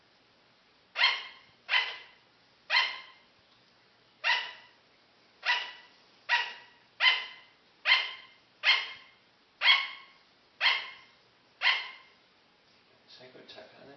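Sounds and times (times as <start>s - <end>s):
sugar glider calling with sharp dog-like yaps: 0.9s - 3.3s, 4.2s - 4.8s, 5.4s - 12.2s.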